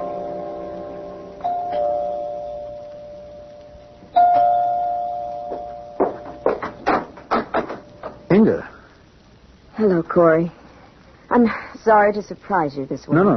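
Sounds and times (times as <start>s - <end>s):
doorbell chiming: 1.4s - 3.4s, 4.1s - 6.5s
sharp knocks or taps: 5.4s - 8.3s
speech: 10.2s - 10.6s, 11.4s - 13.3s.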